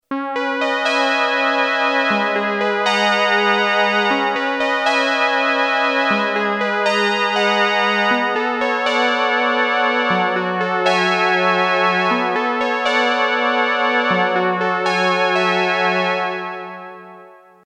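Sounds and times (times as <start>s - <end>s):
Yamaha DX21 synthesizer clean dual tone: 0.1s - 16.9s.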